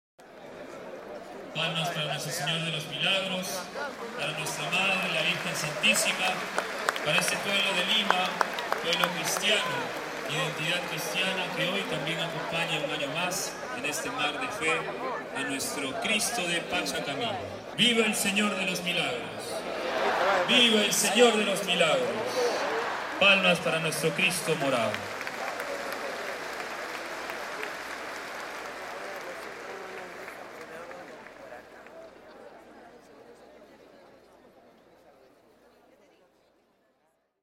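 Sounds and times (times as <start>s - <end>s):
crowd cheering at a religious procession: 0.2s - 32.7s
applause at a religious procession: 1.6s - 15.2s, 19.8s - 32.7s.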